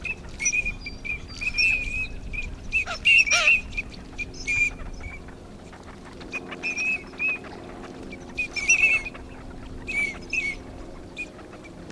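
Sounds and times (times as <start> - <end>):
Green-winged Teal Anas carolinensis calling: 0.0 - 11.9.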